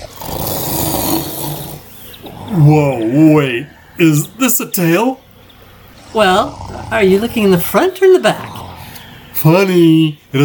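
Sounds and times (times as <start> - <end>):
satyr snoring loudly while passed out: 0.0 - 4.0, 5.9 - 7.6, 8.4 - 9.1
speech: 2.5 - 5.2, 6.1 - 8.6, 9.4 - 10.4.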